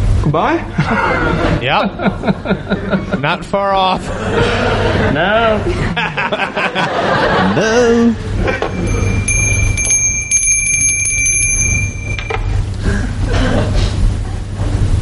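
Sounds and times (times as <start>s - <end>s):
steady low hum: 0.0s - 15.0s
speech: 0.3s - 8.3s
laughter: 0.7s - 9.0s
bell ringing with rapid metallic strikes: 8.5s - 12.8s.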